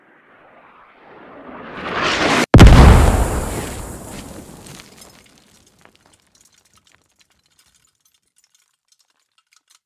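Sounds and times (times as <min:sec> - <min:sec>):
mortar impact at 50m: 0:02.6 - 0:05.6.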